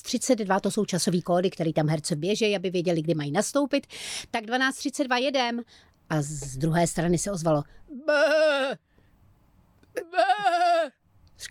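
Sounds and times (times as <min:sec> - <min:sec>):
speech: 0:00.1 - 0:08.9, 0:10.0 - 0:11.4
voice imitating a sheep's bleat for animal dubbing: 0:07.9 - 0:08.8, 0:10.0 - 0:10.9.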